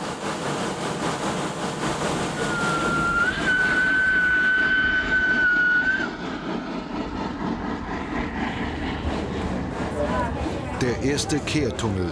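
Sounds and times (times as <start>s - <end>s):
small locomotive climbing steep grade at full power: 0.0s - 12.1s
long sustained locomotive whistle tone: 2.3s - 6.2s
speech: 10.9s - 12.1s.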